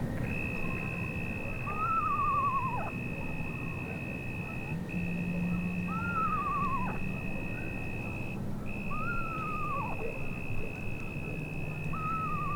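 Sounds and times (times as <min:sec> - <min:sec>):
low background noise: 0:00.0 - 0:12.5
Eastern screech owl Megascops asio trembling whinnies: 0:01.7 - 0:02.9, 0:05.9 - 0:07.0, 0:08.9 - 0:10.0, 0:11.9 - 0:12.5.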